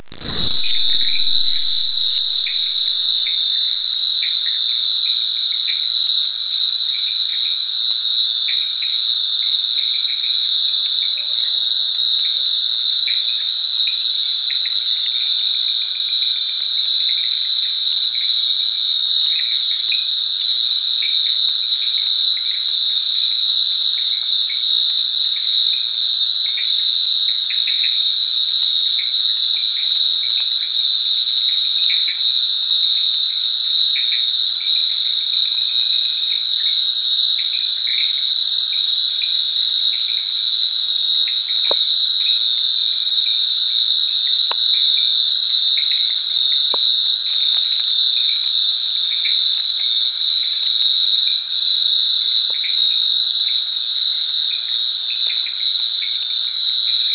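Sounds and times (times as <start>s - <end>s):
frogs by a jetty in Borneo: 0.0s - 57.1s
insects by a jetty in Borneo: 0.0s - 57.1s.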